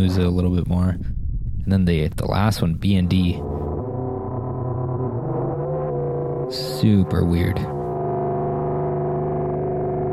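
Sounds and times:
speech: 0:00.0 - 0:03.7, 0:06.5 - 0:07.8
synthesizer feedback tone through regular reverb: 0:03.3 - 0:10.1.

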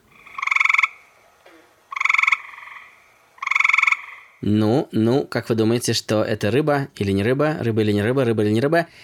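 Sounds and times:
variable toad from North America calling: 0:00.0 - 0:04.5
speech: 0:04.4 - 0:09.0.

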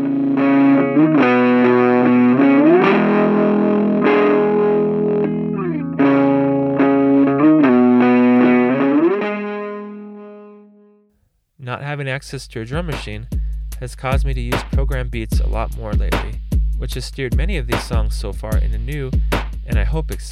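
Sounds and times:
distorted electric guitar chords through tiny practice amp: 0:00.0 - 0:10.9
speech: 0:12.1 - 0:20.3.

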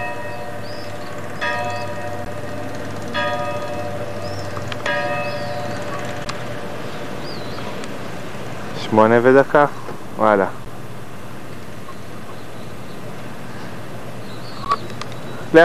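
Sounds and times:
church bell ringing on Crete: 0:00.0 - 0:07.8
high bird chirps: 0:00.0 - 0:15.6
steady low hum: 0:00.0 - 0:15.6
speech: 0:08.9 - 0:10.6.

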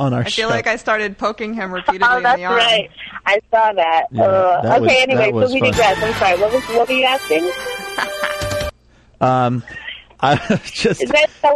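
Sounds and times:
speech: 0:00.0 - 0:08.2, 0:09.2 - 0:11.5
voice imitating a telephone ringing: 0:04.1 - 0:06.0
laughter: 0:07.8 - 0:08.5, 0:10.2 - 0:11.3.

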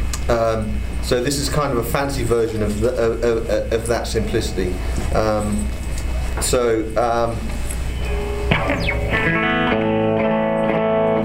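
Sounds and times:
speech: 0:00.3 - 0:05.8, 0:06.4 - 0:07.6, 0:08.5 - 0:09.8
clean electric guitar through delay and compression pedals: 0:04.7 - 0:11.2.

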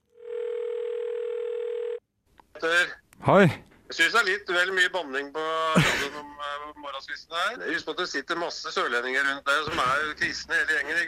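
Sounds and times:
telephone ringing tone before call connects: 0:00.0 - 0:02.0
speech: 0:02.6 - 0:11.0.

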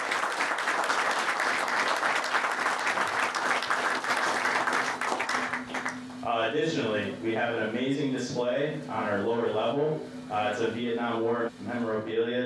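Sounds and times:
audience applause: 0:00.0 - 0:06.0
speech: 0:06.5 - 0:12.4.

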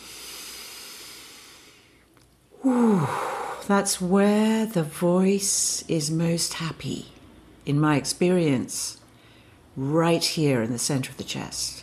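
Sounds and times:
big breath drawn in during a vocal exercise: 0:00.0 - 0:03.7
speech: 0:02.6 - 0:09.0, 0:09.8 - 0:11.8.

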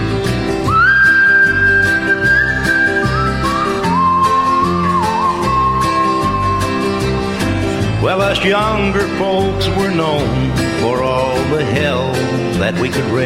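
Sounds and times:
instrumental backing of guitar-like chords and bass: 0:00.0 - 0:13.2
person whistling a slow hymn melody: 0:00.6 - 0:07.2
speech: 0:08.4 - 0:13.2.

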